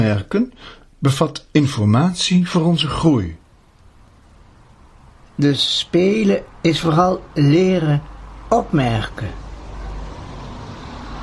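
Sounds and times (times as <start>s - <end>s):
speech: 0.0s - 3.4s, 5.4s - 9.4s
car passing by: 3.4s - 11.2s.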